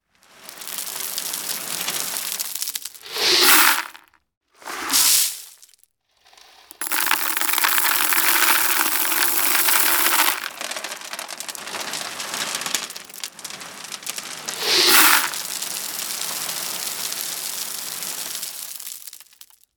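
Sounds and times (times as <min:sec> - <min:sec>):
gravel pouring: 0:00.0 - 0:19.7.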